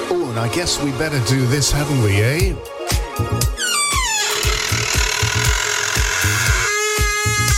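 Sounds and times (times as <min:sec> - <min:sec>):
speech: 0:00.1 - 0:03.6
thumping music beat: 0:02.4 - 0:07.5
creaking door opening: 0:03.4 - 0:07.5.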